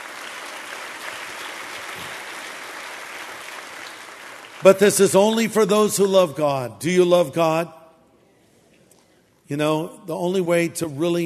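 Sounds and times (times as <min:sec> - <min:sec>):
large crowd applauding: 0:00.0 - 0:05.0
speech: 0:04.6 - 0:07.8, 0:09.5 - 0:11.2.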